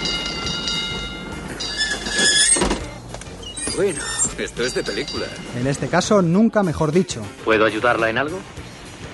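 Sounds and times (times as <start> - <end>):
streetcar in a North American city rumbling on rails: 0.0 - 5.7
thin metallic squeals: 0.0 - 5.8
speech: 3.8 - 8.6.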